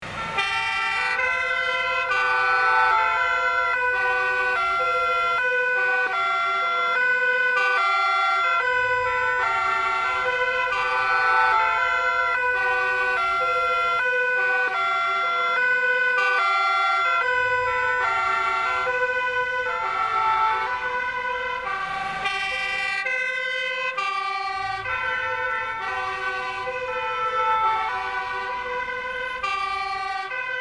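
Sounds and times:
city traffic: 0.0s - 30.5s
multiple emergency vehicle sirens passing by: 0.0s - 30.5s.

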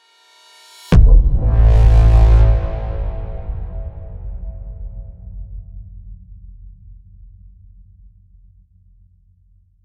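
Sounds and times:
cinematic braam hit impact: 0.9s - 5.6s.

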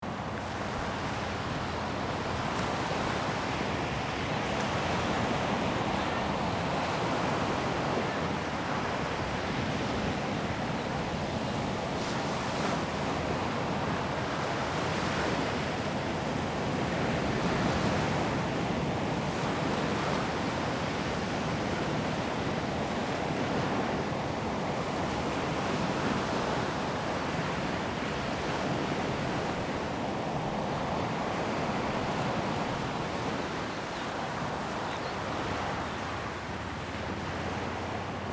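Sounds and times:
open sea waves: 0.0s - 38.3s
open sea wind: 0.0s - 38.3s.

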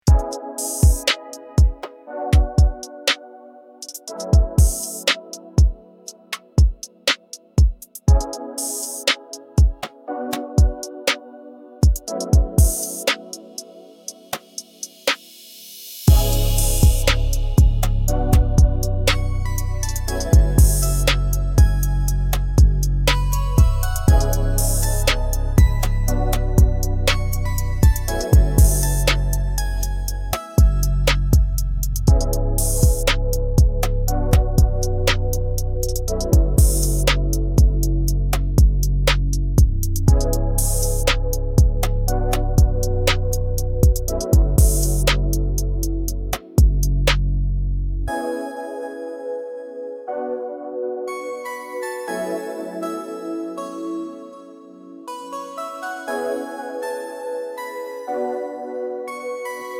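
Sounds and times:
chill beat: 0.0s - 47.4s.

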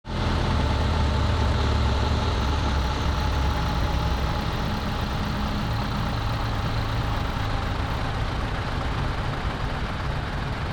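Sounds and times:
industrial semi truck decelerating: 0.1s - 10.6s.

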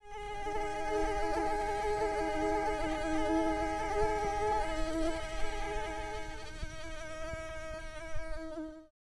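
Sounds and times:
mosquitoes buzzing: 0.0s - 8.9s.

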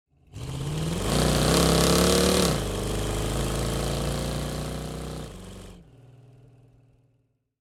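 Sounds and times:
scooter driving away at fast speed: 0.2s - 6.2s.

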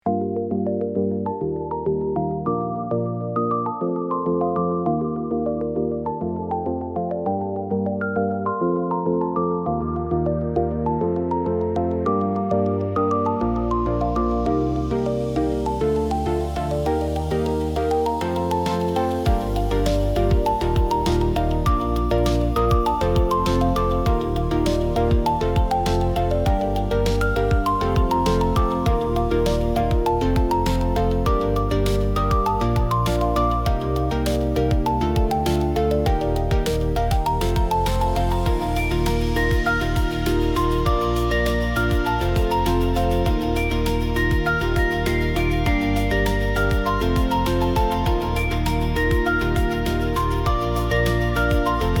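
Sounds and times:
motivational corporate music: 0.0s - 51.9s.

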